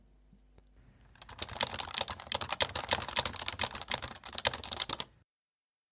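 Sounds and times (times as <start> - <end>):
fast typing on a Topre rubber-dome switch keyboard: 1.1 - 5.1.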